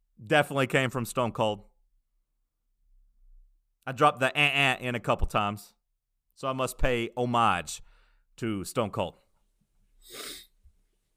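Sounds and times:
speech: 0:00.3 - 0:01.7, 0:03.9 - 0:05.8, 0:06.4 - 0:09.2, 0:10.0 - 0:10.4
sharp nasal sniff: 0:10.0 - 0:10.6.

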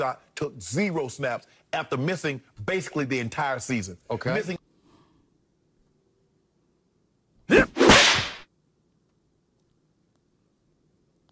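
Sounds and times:
speech: 0:00.0 - 0:04.6
faint hiss: 0:00.0 - 0:11.2
slap sound effect: 0:07.6 - 0:08.5.

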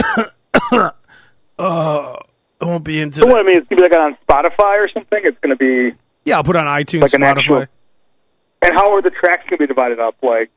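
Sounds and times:
person fake coughing as if calling in sick: 0:00.0 - 0:02.2
person groaning: 0:00.0 - 0:02.3
speech: 0:00.2 - 0:00.4, 0:02.8 - 0:07.8, 0:08.6 - 0:10.5.

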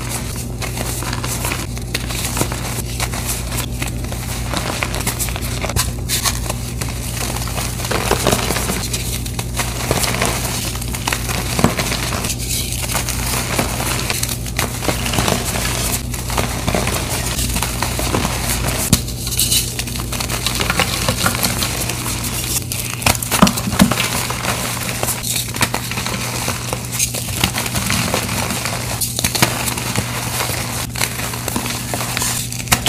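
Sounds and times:
gym chalk being crushed and mixed into a paste in a steel bowl: 0:00.0 - 0:32.8
low steady hum: 0:00.0 - 0:32.8.

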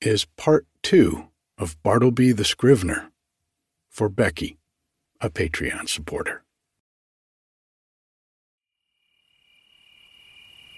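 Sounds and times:
speech: 0:00.0 - 0:03.1, 0:03.9 - 0:04.6, 0:05.2 - 0:06.4
crickets chirping on a late summer night at a cabin: 0:08.7 - 0:10.7.

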